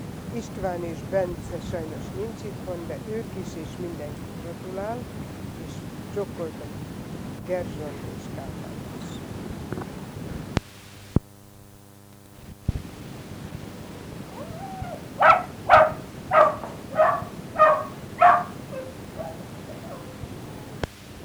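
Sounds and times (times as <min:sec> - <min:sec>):
speech: 0:00.4 - 0:05.4, 0:06.1 - 0:06.9, 0:07.5 - 0:08.7
dog barking: 0:14.3 - 0:20.9.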